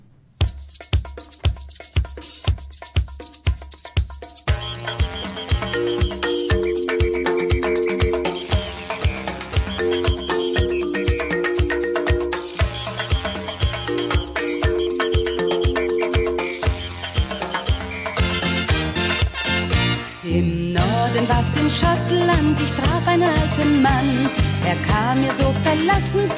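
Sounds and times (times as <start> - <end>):
punchy drum beat of a pop song intro: 0.4 - 20.0, 20.8 - 26.3
full band playing bright melodic lines over a driving rhythm: 4.5 - 25.1.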